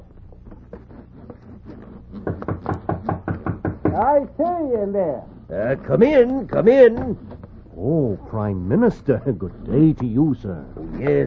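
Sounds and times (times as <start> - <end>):
knocking on a door: 2.2 - 4.2
speech: 4.0 - 11.2.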